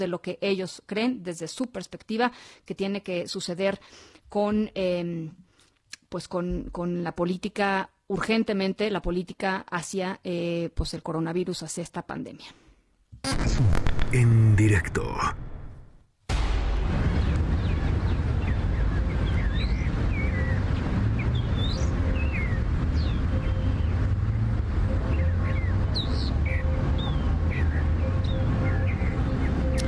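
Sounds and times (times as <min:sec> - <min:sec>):
speech: 0:00.0 - 0:05.5, 0:06.1 - 0:12.6, 0:13.2 - 0:15.4
low rumble of quiet city ambience during lockdown: 0:14.1 - 0:29.8
faint distant birds chirping: 0:17.0 - 0:29.8.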